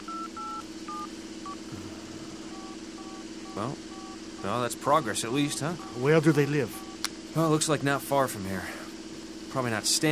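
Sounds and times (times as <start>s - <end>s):
cell phone keypad dialing tones: 0.0s - 1.6s, 2.4s - 7.0s
steady low hum: 0.0s - 9.9s
speech: 3.6s - 6.8s, 7.4s - 8.8s, 9.5s - 10.1s.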